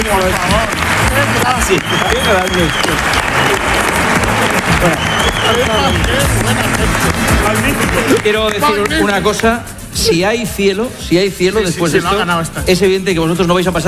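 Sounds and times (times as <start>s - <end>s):
crowd voices and cheers: 0.0s - 9.2s
loud sustained audience applause: 0.0s - 9.4s
speech: 0.1s - 4.0s, 4.6s - 13.8s.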